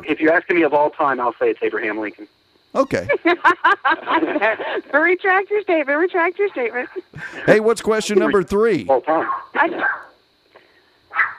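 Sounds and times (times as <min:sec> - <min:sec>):
speech: 0:00.0 - 0:10.1
laughter: 0:02.8 - 0:05.0, 0:07.2 - 0:08.5
dog barking at the front door: 0:09.1 - 0:10.1, 0:11.1 - 0:11.3.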